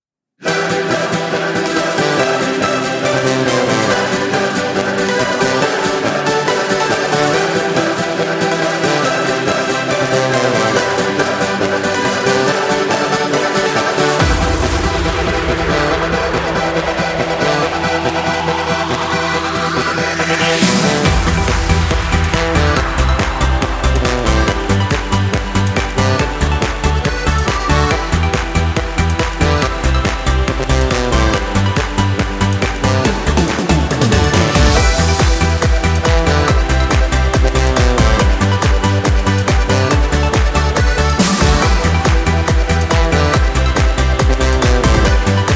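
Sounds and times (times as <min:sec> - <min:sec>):
choir singing: 0:00.4 - 0:25.3
apres-ski karaoke backing track in G major: 0:00.4 - 0:45.5.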